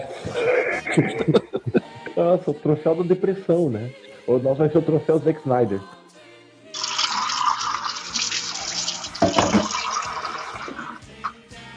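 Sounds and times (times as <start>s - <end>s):
laughter: 0.0s - 2.2s
speech: 0.4s - 1.6s, 2.2s - 6.0s
water running from a tap: 6.8s - 11.0s.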